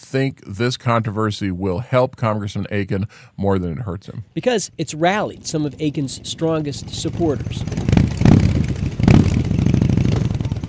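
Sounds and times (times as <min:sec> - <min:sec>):
speech: 0:00.1 - 0:08.1
motorcycle engines revving over a rumbling idle: 0:05.1 - 0:10.6.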